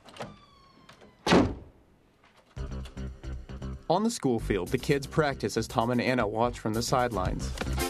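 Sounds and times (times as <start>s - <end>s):
door closing as someone walks into her room: 0.0s - 1.7s
speech: 3.9s - 7.8s.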